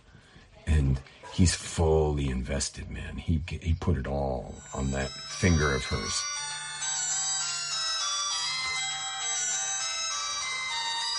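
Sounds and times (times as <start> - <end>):
speech: 0.8 - 6.6
mobile phone ringtone with chiming electronic melody: 4.4 - 11.1.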